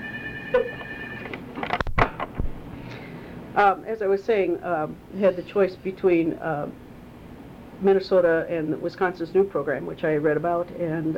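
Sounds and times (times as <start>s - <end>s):
telephone ringing with high electronic tone: 0.0s - 1.4s
speech: 0.5s - 0.7s, 3.6s - 6.8s, 7.8s - 11.1s.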